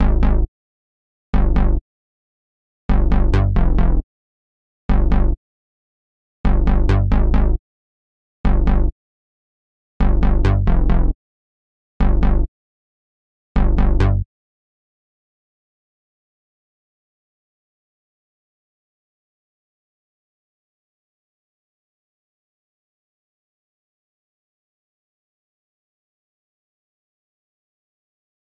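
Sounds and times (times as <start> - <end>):
Juno-60 synth bass loop in C minor: 0.0 - 0.5, 1.4 - 1.8, 2.9 - 4.0, 4.9 - 5.4, 6.5 - 7.6, 8.5 - 8.9, 10.0 - 11.2, 12.0 - 12.5, 13.6 - 14.2.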